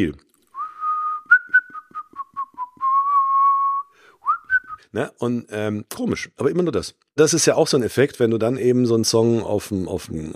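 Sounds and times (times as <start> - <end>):
speech: 0.0 - 0.2, 4.9 - 10.3
man whistling a lively tune: 0.6 - 4.9.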